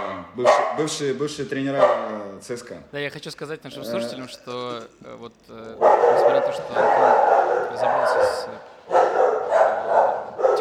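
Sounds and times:
speech: 0:00.2 - 0:09.2
dogs barking in an apartment: 0:00.4 - 0:01.0, 0:01.7 - 0:02.2, 0:05.8 - 0:10.5.

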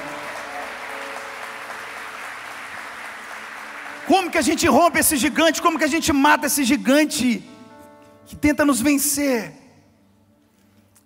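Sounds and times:
crowd at a Christian sermon applauding: 0:00.0 - 0:06.4
speech: 0:04.1 - 0:07.5, 0:08.3 - 0:09.6.

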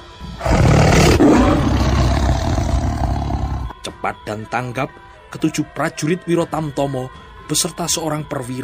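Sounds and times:
loud tiger roar and growl: 0:00.2 - 0:03.7
speech: 0:04.0 - 0:08.6.

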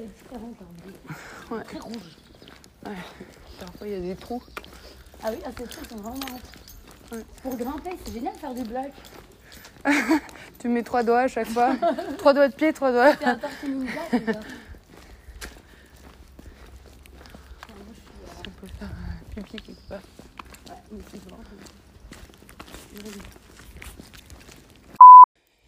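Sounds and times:
speech: 0:00.0 - 0:09.2, 0:09.8 - 0:14.6
woman's brisk footsteps walking outdoors: 0:00.0 - 0:25.0
laughter: 0:09.8 - 0:10.4, 0:11.5 - 0:12.3, 0:13.0 - 0:14.7
short electronic beep: 0:25.0 - 0:25.3.

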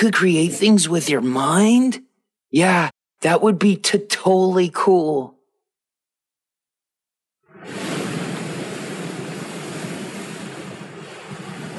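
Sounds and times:
speech: 0:00.0 - 0:05.4
giant ocean waves surging around a small ship in thick fog: 0:07.5 - 0:11.7.

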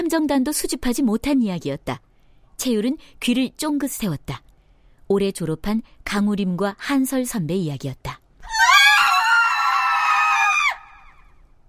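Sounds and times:
speech: 0:00.1 - 0:04.4, 0:05.1 - 0:08.6
girl screaming at night in a dormitory: 0:08.4 - 0:11.3.

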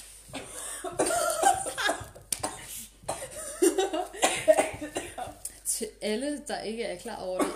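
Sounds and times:
harsh coughing: 0:00.4 - 0:05.4, 0:07.4 - 0:07.5
speech: 0:06.0 - 0:07.5.

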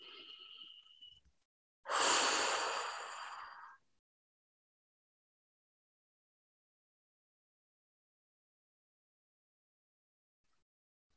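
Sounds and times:
deep breath in during a guided meditation: 0:01.9 - 0:03.8.

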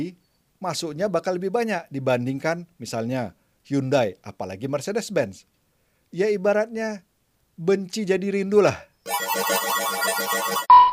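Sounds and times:
speech: 0:00.0 - 0:05.5, 0:06.1 - 0:10.7
ride-hailing app new order alert tone on a smartphone: 0:09.1 - 0:10.9
bright sustained beep: 0:10.0 - 0:10.9.

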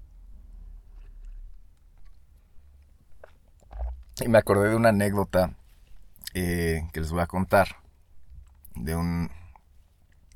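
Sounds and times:
low rumble: 0:00.0 - 0:10.3
person sipping coffee: 0:00.6 - 0:04.3
slurp and swallow: 0:00.8 - 0:04.3
speech: 0:04.2 - 0:05.6, 0:06.3 - 0:07.8, 0:08.8 - 0:09.4.

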